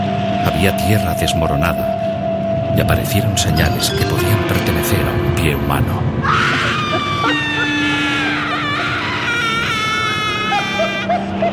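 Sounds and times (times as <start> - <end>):
speech: 0.6 - 2.1, 2.7 - 7.4
wild frightful shriek from an abyss: 6.2 - 11.5.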